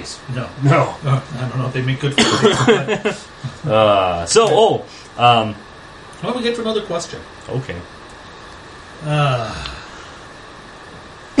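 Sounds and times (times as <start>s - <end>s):
speech: 0.0s - 8.0s, 9.0s - 9.8s
person coughing: 2.2s - 2.8s
laughter: 2.2s - 3.3s.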